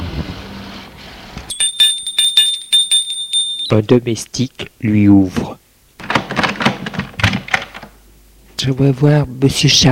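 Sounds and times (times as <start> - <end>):
doorbell rung at the door of a grand townhouse: 1.5 - 3.8
speech: 3.7 - 5.6, 8.6 - 9.9.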